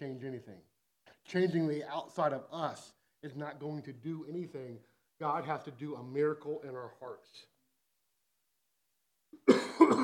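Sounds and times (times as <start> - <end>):
speech: 0.0 - 7.5
person coughing hoarsely: 9.4 - 10.0.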